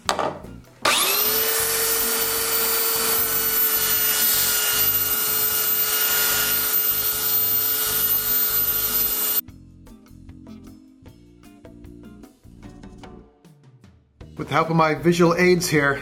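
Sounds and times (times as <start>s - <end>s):
power sander sanding stained wood: 0.9s - 9.4s
speech: 14.5s - 16.0s.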